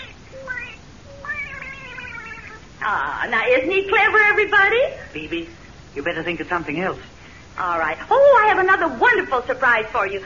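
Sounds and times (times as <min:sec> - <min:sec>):
cat meowing: 0:00.0 - 0:02.7
speech: 0:02.8 - 0:10.2.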